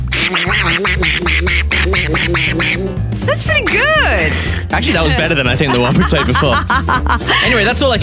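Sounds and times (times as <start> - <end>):
person doing a cartoon duck voice impression: 0.1 - 2.9, 3.6 - 4.0
speech: 0.3 - 8.0
laughter: 4.7 - 7.9.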